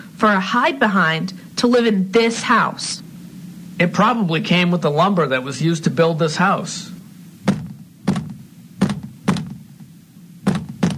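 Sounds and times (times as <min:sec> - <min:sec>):
speech: 0:00.2 - 0:03.0, 0:03.8 - 0:07.0
dull hollow knocks on a wall of a house: 0:07.4 - 0:09.7, 0:10.4 - 0:10.9.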